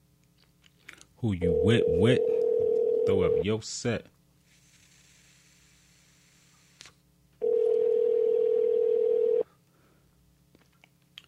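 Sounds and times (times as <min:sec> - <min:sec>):
speech: 0:01.2 - 0:02.4, 0:03.1 - 0:04.2
phone line ringback tone: 0:01.5 - 0:03.4, 0:07.4 - 0:09.5.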